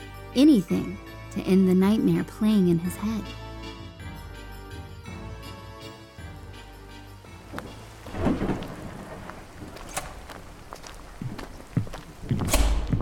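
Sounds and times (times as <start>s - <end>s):
speech: 0.4s - 3.4s
steady rain at night: 7.4s - 12.5s
deep rumble of thunder: 7.5s - 12.9s.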